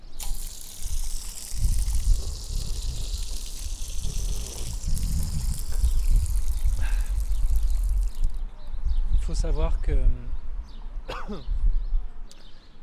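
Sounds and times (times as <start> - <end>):
fountain water flowing in a steady rushing splash: 0.0 - 8.4
speech: 9.3 - 10.3, 11.3 - 11.6.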